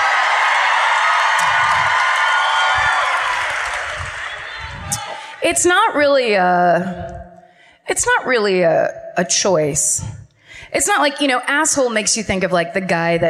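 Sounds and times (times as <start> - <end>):
live crowd applauding and cheering: 0.0 - 5.4
speech: 5.5 - 7.2, 7.9 - 13.2.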